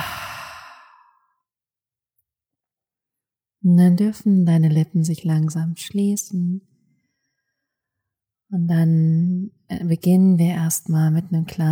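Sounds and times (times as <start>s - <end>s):
deep breathy exhale during a guided breathing exercise: 0.0s - 1.3s
speech: 3.6s - 6.7s, 8.5s - 11.7s.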